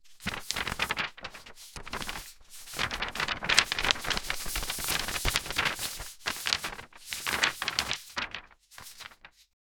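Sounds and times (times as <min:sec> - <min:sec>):
shuffling papers: 0:00.0 - 0:09.4.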